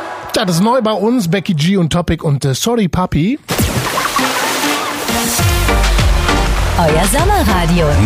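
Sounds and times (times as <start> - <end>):
speech: 0.4 - 3.8, 6.8 - 8.0
flowing river water: 3.6 - 7.3.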